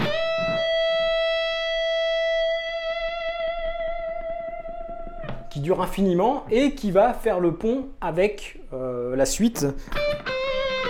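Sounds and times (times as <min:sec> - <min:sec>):
distorted electric guitar note with feedback and vibrato: 0:00.0 - 0:04.2
speech: 0:05.6 - 0:10.0.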